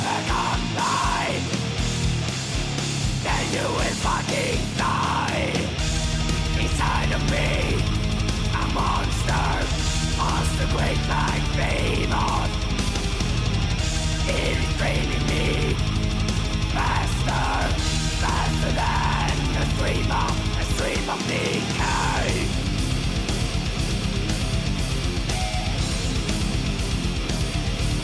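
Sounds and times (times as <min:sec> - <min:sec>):
harsh shouted vocals: 0:00.0 - 0:01.8, 0:03.0 - 0:13.0, 0:13.6 - 0:22.8
driving drums: 0:00.0 - 0:28.0
heavily distorted death metal guitars: 0:00.0 - 0:28.0.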